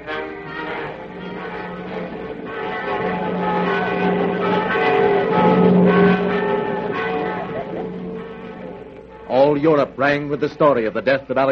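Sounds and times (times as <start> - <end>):
church bells ringing: 0.0 - 11.4
speech: 9.6 - 11.4.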